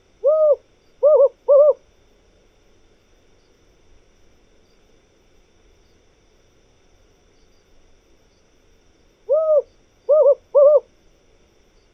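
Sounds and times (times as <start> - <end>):
desert owl Strix hudurumi hooting: 0.0 - 1.8, 9.3 - 10.9
faint low hum: 0.0 - 11.9.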